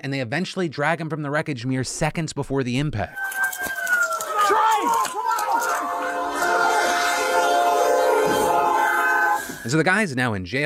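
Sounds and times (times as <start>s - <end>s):
speech: 0.0s - 3.8s, 4.8s - 5.2s, 9.6s - 10.6s
agitated people shouting: 3.1s - 9.7s
train horn blaring as train approaches: 5.4s - 9.8s.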